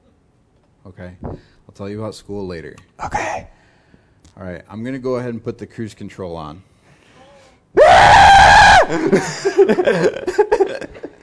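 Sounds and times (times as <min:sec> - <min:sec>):
speech: 0:00.9 - 0:03.5, 0:04.4 - 0:06.7, 0:08.9 - 0:11.0
breathy shaky vocal sounds and murmurs: 0:03.0 - 0:03.6
person screaming loudly: 0:07.8 - 0:09.1
laughter: 0:08.9 - 0:11.2.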